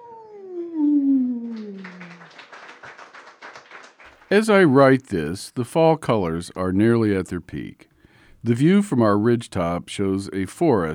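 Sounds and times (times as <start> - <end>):
person imitating a coyote howl: 0.0 - 2.2
speech: 4.3 - 10.9
soft breathy hiss: 7.6 - 8.6.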